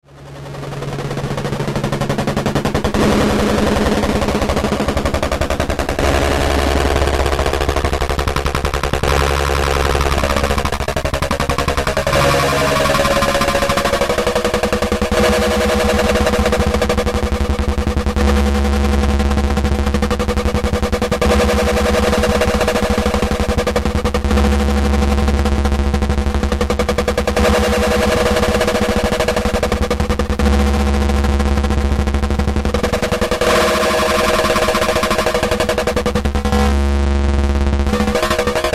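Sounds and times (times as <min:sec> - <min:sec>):
jumping pulses: 0:00.0 - 0:38.7.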